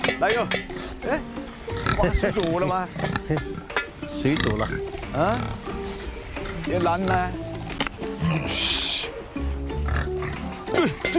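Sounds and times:
speech: 0.2 - 5.7, 6.6 - 7.4, 8.2 - 8.9, 10.7 - 11.1
black pigs grunting and squealing while being fed: 1.7 - 7.4, 8.1 - 11.1
low shuffling: 4.9 - 8.2.

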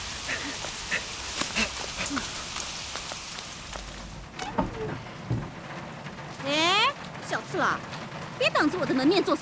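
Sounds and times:
steady rain pouring in a dense hissing wash: 0.0 - 9.4
speech: 7.6 - 9.4.

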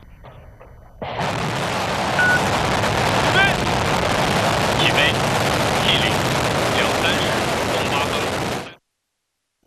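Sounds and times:
crewed spacecraft rocket engine ignition and launch roar: 1.0 - 8.8.

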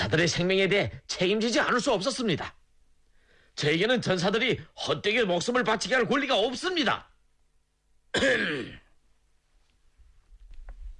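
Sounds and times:
speech: 0.1 - 2.6, 3.6 - 7.1, 8.1 - 8.8
dry cough: 8.1 - 8.9.

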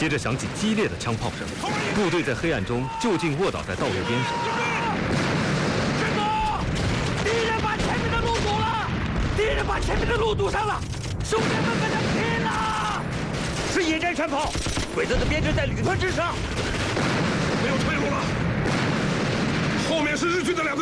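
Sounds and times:
artillery explosions: 0.0 - 20.8
intense gunfire: 0.0 - 20.8
people shouting: 2.7 - 5.1, 5.9 - 10.1, 11.4 - 13.0.

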